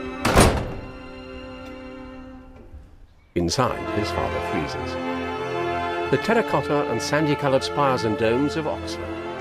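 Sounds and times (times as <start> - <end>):
dull thud of a door closing: 0.1 - 3.2
speech: 3.4 - 5.3, 6.1 - 9.2.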